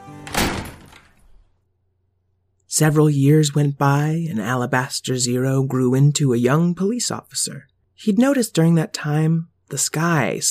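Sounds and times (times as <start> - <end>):
door swinging shut with a solid thud: 0.2 - 1.5
speech: 2.7 - 10.4.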